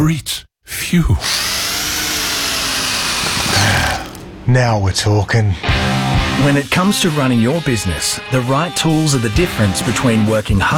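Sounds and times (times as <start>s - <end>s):
speech: 0.0s - 1.5s, 4.5s - 10.7s
power drill whirring: 1.2s - 4.3s.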